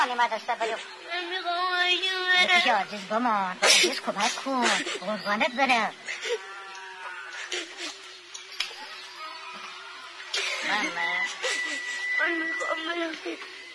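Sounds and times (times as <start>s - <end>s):
speech: 0.1s - 6.4s, 10.7s - 11.2s, 12.2s - 13.6s
boy crying and whimpering: 6.0s - 8.0s, 10.6s - 12.5s.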